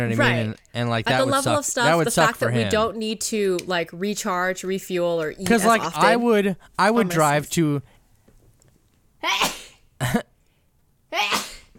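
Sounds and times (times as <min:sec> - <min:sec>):
speech: 0:00.0 - 0:07.9, 0:09.2 - 0:10.2
person sneezing: 0:09.2 - 0:10.2, 0:11.2 - 0:11.7.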